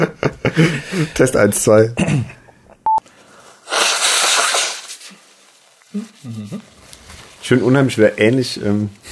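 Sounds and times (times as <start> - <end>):
speech: 0.0 - 2.4, 6.0 - 6.7, 7.4 - 9.1
loud rasping nose blow: 3.6 - 5.2.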